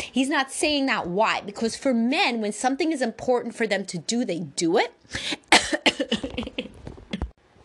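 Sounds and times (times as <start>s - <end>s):
speech: 0.2s - 6.1s
person coughing: 5.2s - 7.3s
person laughing: 5.4s - 7.3s.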